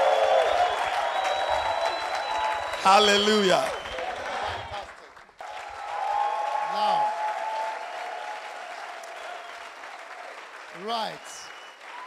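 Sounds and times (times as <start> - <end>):
congregation applauding and cheering: 0.0 - 12.0
speech: 2.8 - 3.8.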